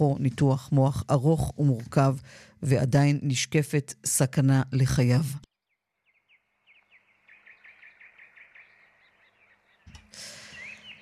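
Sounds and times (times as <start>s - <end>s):
speech: 0.0s - 5.5s
birds chirping: 5.5s - 11.0s.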